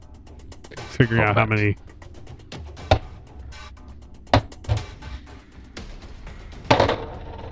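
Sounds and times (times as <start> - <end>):
laughter: 0.7 - 1.8
speech: 0.9 - 1.9
dice clattering across a hard tabletop in a tabletop role-playing game: 6.7 - 7.5.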